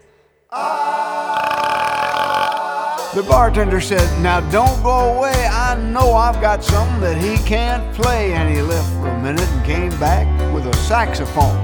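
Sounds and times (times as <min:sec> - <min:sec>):
speech: 0:00.5 - 0:00.8, 0:03.2 - 0:11.6
long loud burp: 0:01.3 - 0:02.9.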